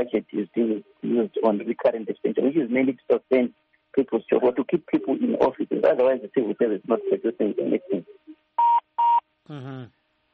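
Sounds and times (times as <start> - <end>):
speech: 0.0 - 8.3, 9.5 - 10.0
short electronic phone-line beeps as a call drops: 8.6 - 9.2.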